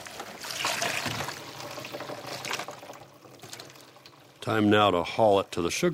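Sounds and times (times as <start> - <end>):
maple sap from a tapped tree pouring into a bucket: 0.0 - 4.6
speech: 4.4 - 5.9.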